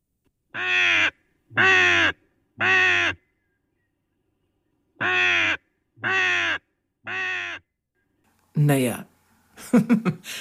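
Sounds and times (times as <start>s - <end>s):
raven giving loud harsh caws: 0.5s - 3.4s, 5.0s - 7.7s
speech: 0.6s - 1.0s, 8.7s - 9.1s, 9.7s - 10.3s
laughter: 9.6s - 10.3s.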